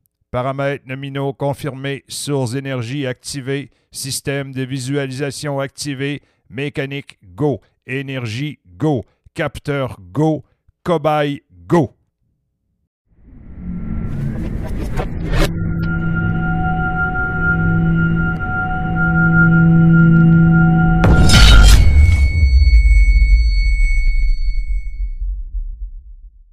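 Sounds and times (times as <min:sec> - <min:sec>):
speech: 0:00.3 - 0:12.0, 0:15.0 - 0:15.6
science-fiction particle accelerator powering up with deep rumbling hum: 0:13.2 - 0:26.5
thin shrill high tones of a science-fiction particle accelerator: 0:15.4 - 0:25.1
sharp crashing burst: 0:21.0 - 0:23.5.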